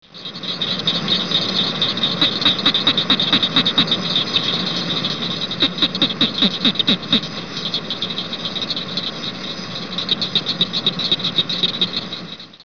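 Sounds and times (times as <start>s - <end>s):
southern cricket frog: 0.0s - 12.6s.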